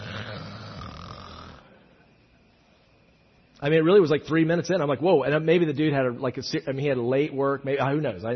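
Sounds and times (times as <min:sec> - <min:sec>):
man snoring loudly in a church service during a sermon: 0:00.0 - 0:01.8
speech: 0:03.6 - 0:08.3.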